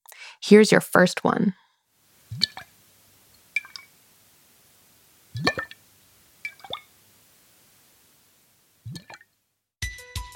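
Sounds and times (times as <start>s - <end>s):
speech: 0.4s - 1.6s
heavy drips of thick liquid: 2.0s - 9.4s.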